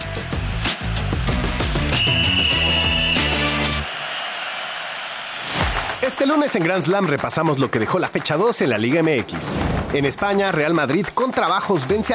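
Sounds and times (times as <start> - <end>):
loud punchy music: 0.0 - 4.0, 5.3 - 12.1
long shrill referee's starting whistle blast: 0.7 - 4.6
speech: 6.1 - 12.1.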